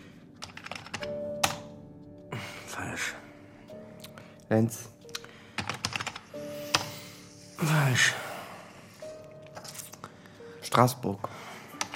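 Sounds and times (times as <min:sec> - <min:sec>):
typing password guesses on a laptop keyboard: 0:00.4 - 0:01.6, 0:05.5 - 0:06.3
speech: 0:02.8 - 0:03.2, 0:04.5 - 0:05.0, 0:07.6 - 0:08.2, 0:10.7 - 0:11.4.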